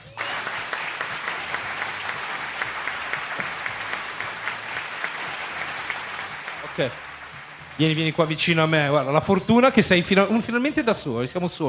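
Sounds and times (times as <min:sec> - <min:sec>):
audience applause on stage: 0:00.0 - 0:09.0
speech: 0:06.8 - 0:07.1, 0:07.8 - 0:11.6.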